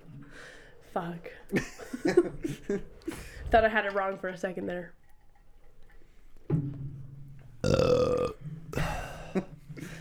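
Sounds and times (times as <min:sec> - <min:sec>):
speech: 0:01.0 - 0:05.0, 0:07.6 - 0:08.6
person burping: 0:07.6 - 0:09.2.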